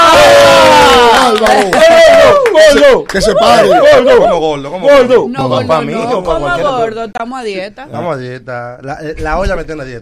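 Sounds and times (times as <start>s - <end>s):
loud studio crowd cheering and whooping: 0.0s - 4.4s
speech: 2.9s - 10.0s.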